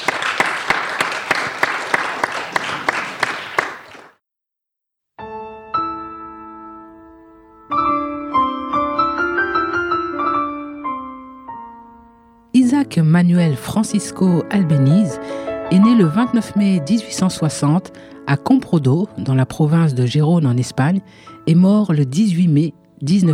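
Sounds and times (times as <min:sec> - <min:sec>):
lively audience applause for pianists: 0:00.0 - 0:04.2
piano playing: 0:05.2 - 0:23.3
speech: 0:12.9 - 0:23.3.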